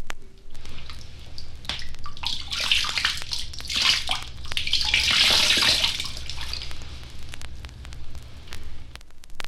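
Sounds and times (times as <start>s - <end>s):
water poured from a horn splashing into a lake or river: 0.7s - 6.8s.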